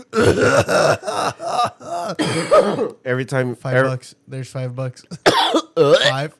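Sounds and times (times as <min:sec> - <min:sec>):
person coughing harshly after smoking a blunt: 0:00.0 - 0:03.0, 0:05.1 - 0:06.3
speech: 0:00.0 - 0:06.3.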